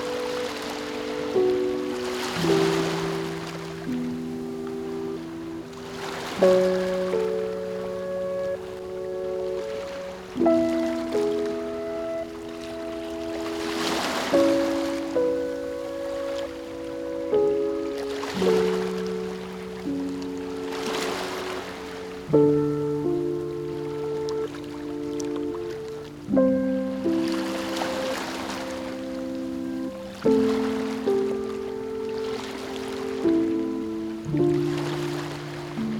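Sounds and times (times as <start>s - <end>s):
mellow sustained chords: 0.0s - 35.9s
ocean waves: 0.0s - 35.9s.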